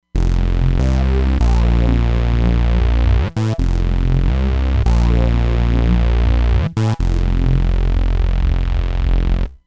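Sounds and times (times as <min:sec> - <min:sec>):
drop bass on Roland Fantom XR: 0:00.0 - 0:09.6.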